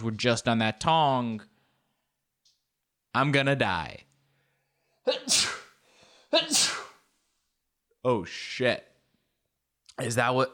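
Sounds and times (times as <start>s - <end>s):
speech: 0.0s - 1.5s, 3.1s - 4.1s, 5.0s - 5.6s, 6.3s - 6.9s, 8.0s - 8.9s, 10.0s - 10.5s
person sneezing from allergy: 5.0s - 7.1s.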